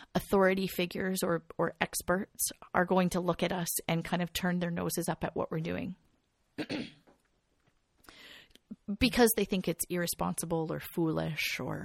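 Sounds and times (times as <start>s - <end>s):
speech: 0.2s - 6.0s, 6.6s - 7.0s, 8.8s - 11.8s
faint small sounds: 5.8s - 9.6s
rough cough: 6.6s - 7.1s.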